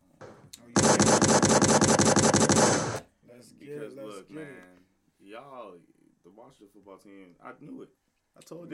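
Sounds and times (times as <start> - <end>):
rapid-fire gunshot sound effects like automatic weapon fire: 0.8 - 3.0
speech: 5.4 - 8.7.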